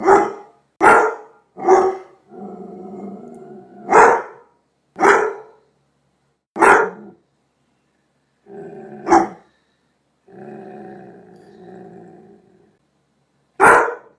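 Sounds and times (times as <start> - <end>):
doberman pinscher: 0.0 - 2.2, 3.9 - 5.6, 6.6 - 7.0, 9.1 - 9.5, 13.6 - 14.1.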